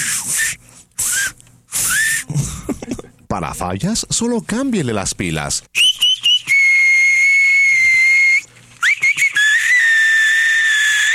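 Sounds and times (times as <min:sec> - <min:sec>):
shrill battery-powered novelty whistling keychain whistle: 0:00.0 - 0:02.2, 0:05.8 - 0:11.1
speech: 0:03.4 - 0:05.9.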